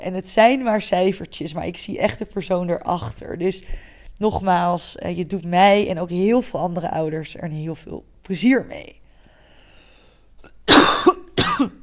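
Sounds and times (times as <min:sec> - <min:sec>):
speech: 0:00.0 - 0:09.0
person coughing: 0:10.5 - 0:11.8.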